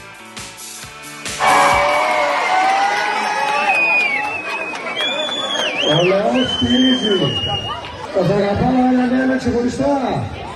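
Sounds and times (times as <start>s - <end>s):
crowd of children cheering and shouting: 1.4s - 5.0s
speech: 5.9s - 10.4s.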